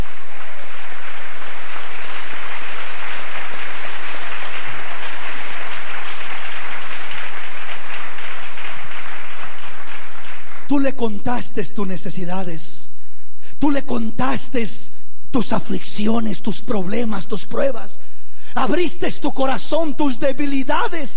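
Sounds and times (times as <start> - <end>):
audience applauding: 0.0 - 10.9
speech: 10.7 - 12.8, 13.6 - 18.0, 18.6 - 21.1.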